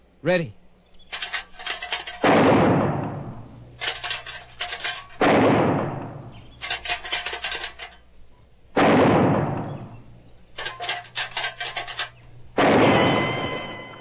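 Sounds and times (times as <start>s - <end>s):
metal can being rattled: 1.0s - 2.3s, 3.8s - 5.2s, 6.5s - 8.0s, 10.5s - 12.2s
gunshots fired at tin cans: 1.6s - 4.0s, 5.1s - 6.4s, 8.8s - 10.0s, 10.6s - 13.8s.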